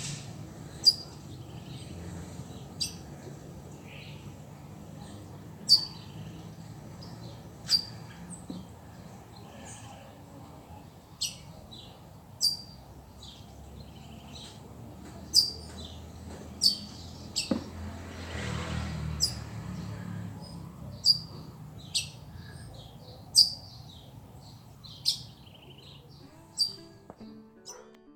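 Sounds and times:
birds chirping in a backyard: 0.0 - 27.8
passing whoosh: 17.7 - 20.9.

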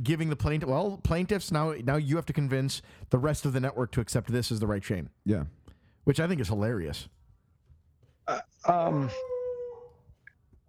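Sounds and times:
speech: 0.0 - 7.2, 8.3 - 9.3
dog yelping, howling and whimpering: 8.6 - 10.6.

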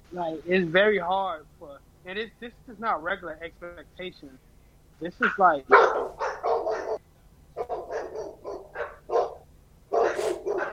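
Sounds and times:
speech: 0.1 - 6.2
several dogs barking excitedly: 5.6 - 7.0, 7.6 - 10.7.

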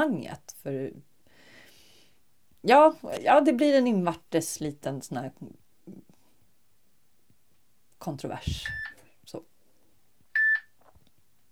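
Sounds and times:
speech: 0.0 - 1.1, 2.6 - 6.1, 8.0 - 9.5
single short electronic beep from a phone: 8.6 - 9.0, 10.4 - 10.7.

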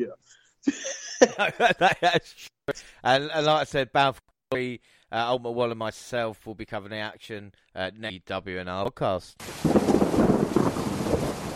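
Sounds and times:
speech: 0.0 - 10.7
laughter: 0.7 - 2.5
heavy rain falling during a storm: 9.4 - 11.5.

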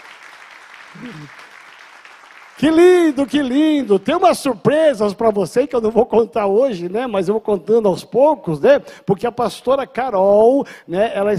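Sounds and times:
audience applauding: 0.0 - 4.2
speech: 0.9 - 1.5, 2.6 - 11.3
person calling out: 1.0 - 1.3.

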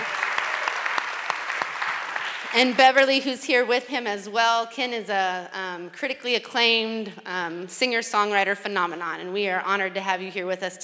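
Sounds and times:
audience applause for a guest: 0.0 - 2.8
speech: 2.5 - 10.8.

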